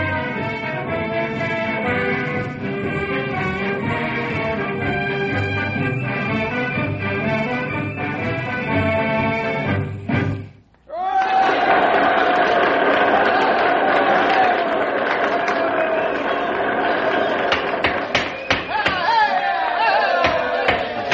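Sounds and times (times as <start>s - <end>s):
high school brass band playing a march: 0.0s - 10.4s
large crowd of students cheering and shouting: 10.9s - 21.1s
sharp claps or knocks: 17.4s - 19.0s, 20.2s - 21.1s.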